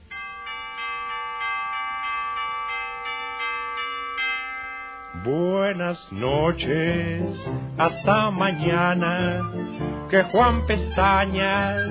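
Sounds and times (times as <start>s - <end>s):
bells ringing ding-dong: 0.0s - 7.2s
speech: 5.2s - 11.8s.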